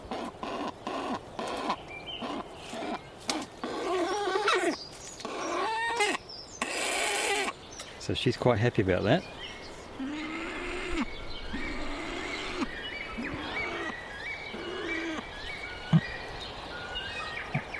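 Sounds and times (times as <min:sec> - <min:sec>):
male bird low rough growling call with food in its mouth: 0:00.0 - 0:07.6, 0:10.0 - 0:16.2
other birds calling and chirping at higher pitch: 0:00.0 - 0:17.7
speech: 0:08.1 - 0:09.4.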